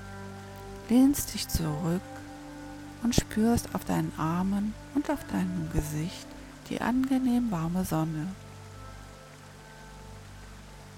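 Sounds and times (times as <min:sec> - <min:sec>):
flowing river water: 0:00.0 - 0:10.9
speech: 0:00.9 - 0:02.2, 0:03.0 - 0:08.4.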